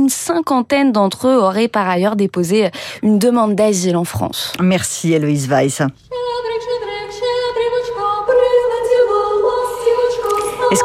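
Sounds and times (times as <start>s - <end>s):
speech: 0.1s - 6.5s
choir singing a Christmas carol in Ukrainian: 6.4s - 10.8s.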